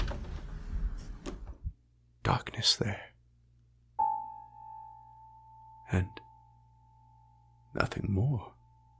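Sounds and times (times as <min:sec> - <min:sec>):
door swinging open: 0:00.0 - 0:01.7
speech: 0:02.3 - 0:03.1, 0:05.9 - 0:06.2, 0:07.8 - 0:08.6.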